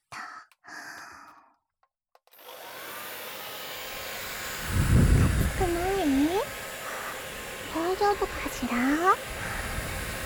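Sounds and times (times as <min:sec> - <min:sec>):
breathy sound: 0:00.0 - 0:01.6
hair dryer blowing: 0:02.3 - 0:10.2
speech: 0:08.0 - 0:09.3.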